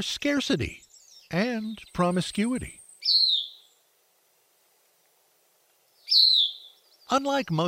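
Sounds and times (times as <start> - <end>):
speech: 0.0 - 2.8, 7.1 - 7.6
Bicknell's thrush singing at dawn among fir trees: 2.8 - 3.7, 6.0 - 6.8.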